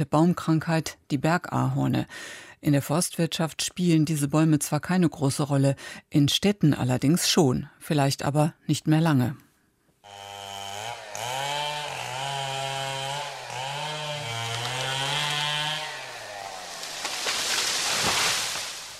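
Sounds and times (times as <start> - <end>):
speech: 0.0 - 9.4
chainsaw engine revving: 10.0 - 18.9.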